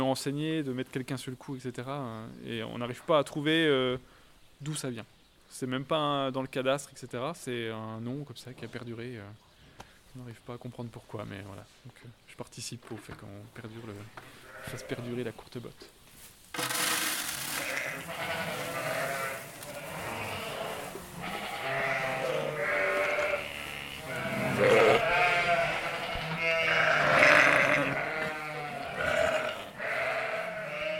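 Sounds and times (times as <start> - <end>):
speech: 0.0 - 9.5, 10.1 - 16.8
Île-de-France and Texel ewes bleating: 14.4 - 15.1, 17.4 - 30.9.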